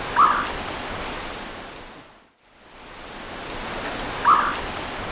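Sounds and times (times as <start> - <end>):
male Thamnophilus praecox call in the Eastern Lowlands of South America: 0.1 - 0.7, 4.2 - 4.9.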